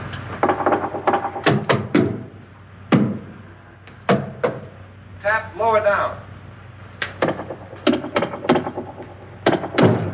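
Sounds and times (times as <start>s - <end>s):
knocking on a solid wall: 0.4s - 2.2s, 2.9s - 3.2s, 4.1s - 4.7s, 7.2s - 10.1s.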